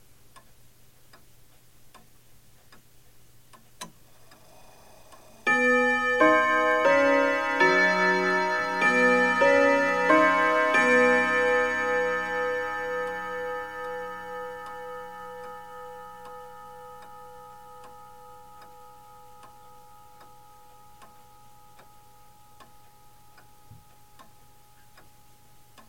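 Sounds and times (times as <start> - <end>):
soft bell ringing: 5.4 - 25.8.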